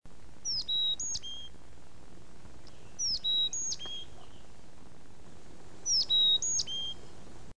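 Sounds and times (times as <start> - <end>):
chickadee calling: 0.4 - 1.6, 2.6 - 4.6, 5.8 - 7.2.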